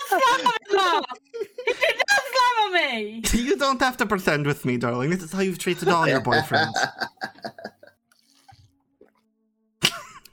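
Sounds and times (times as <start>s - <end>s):
laughter: 0.0s - 2.4s, 5.4s - 8.0s
speech: 0.1s - 1.3s, 2.9s - 7.3s
loud wet throaty gulp: 8.1s - 10.1s
soft liquid clicks and squishy mouth sounds: 8.1s - 10.3s.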